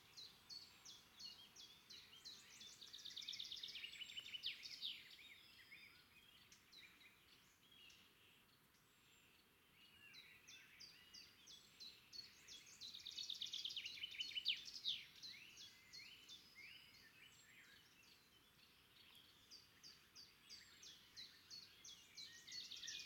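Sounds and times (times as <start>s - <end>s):
bird chirping: 0.0s - 23.0s.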